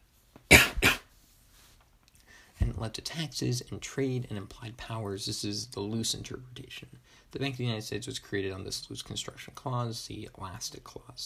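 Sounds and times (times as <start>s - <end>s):
person coughing: 0.5s - 1.1s
speech: 2.8s - 11.2s.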